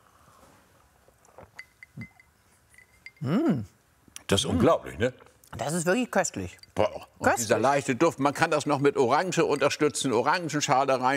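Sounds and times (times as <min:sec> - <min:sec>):
glasses clinking in a toast: 0:01.4 - 0:03.4, 0:06.3 - 0:11.1
speech: 0:03.2 - 0:03.7, 0:04.3 - 0:11.1.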